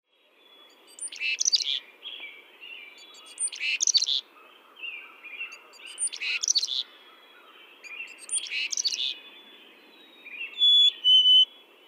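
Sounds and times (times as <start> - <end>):
chickadee chick-a-dee calls: 0.6 - 1.9, 2.8 - 9.3, 10.2 - 11.5.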